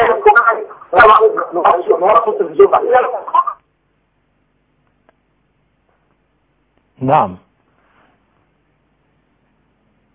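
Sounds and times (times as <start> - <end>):
television voices chattering through a phone line: 0.0 - 3.7
speech: 0.9 - 3.4, 7.0 - 7.4.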